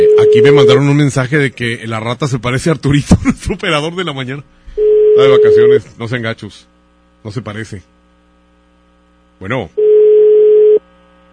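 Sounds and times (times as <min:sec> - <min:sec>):
telephone ringing tone on an outgoing call: 0:00.0 - 0:00.8, 0:04.8 - 0:05.8, 0:09.8 - 0:10.8
speech: 0:00.0 - 0:08.0, 0:09.4 - 0:09.9
faint residual hum: 0:00.0 - 0:11.3.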